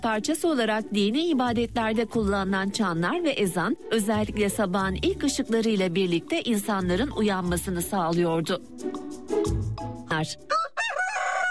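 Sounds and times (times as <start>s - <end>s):
speech: 0.0s - 9.6s, 10.2s - 10.6s
rooster crowing at dawn in the countryside: 10.5s - 11.4s.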